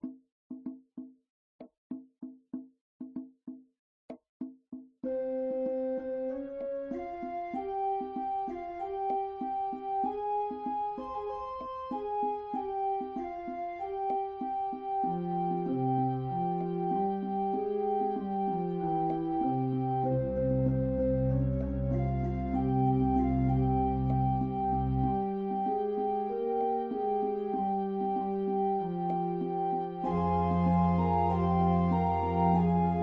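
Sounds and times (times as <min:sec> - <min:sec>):
organ: 0:05.0 - 0:33.0.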